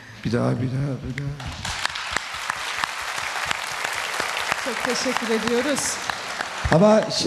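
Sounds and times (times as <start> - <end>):
speech: 0.2 - 1.7, 4.7 - 7.2
audience applause: 1.5 - 7.2.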